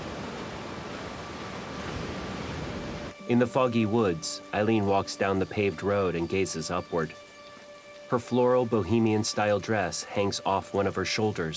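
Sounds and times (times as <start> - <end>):
waves lapping onto the shore: 0.0 - 3.6
speech: 3.3 - 7.3, 8.1 - 11.5.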